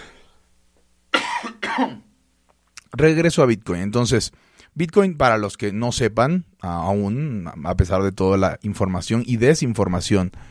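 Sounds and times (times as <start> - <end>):
person with a sore throat coughing: 1.2 - 2.1
speech: 1.8 - 2.0, 3.0 - 10.4.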